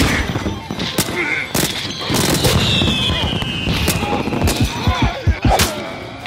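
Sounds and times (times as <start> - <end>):
fireworks exploding: 0.0 - 5.7
firework whistling sweep overhead: 1.5 - 5.6.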